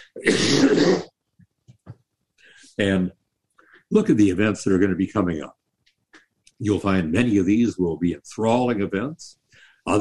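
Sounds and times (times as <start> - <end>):
throat clearing like a suppressed cough: 0.0 - 1.1
speech: 0.1 - 1.1, 2.8 - 3.2, 3.9 - 5.6, 6.6 - 10.0.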